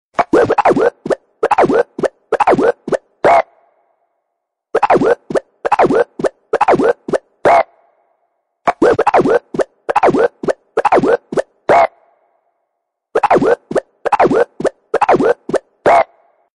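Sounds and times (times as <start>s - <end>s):
Nokia scratching sound: 0.2s - 3.4s, 4.8s - 7.7s, 8.7s - 11.9s, 13.2s - 16.2s.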